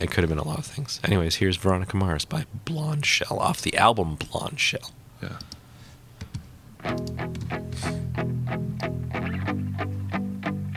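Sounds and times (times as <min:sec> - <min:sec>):
speech: 0:00.0 - 0:05.6, 0:06.8 - 0:08.3
electric guitar strumming chords with spring reverb: 0:06.8 - 0:10.7.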